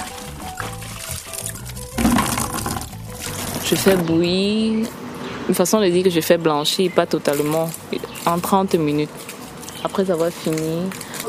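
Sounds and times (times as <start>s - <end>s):
water pouring while washing blanched amaranth greens: 0.0s - 4.0s, 7.2s - 11.2s
speech: 3.7s - 11.1s.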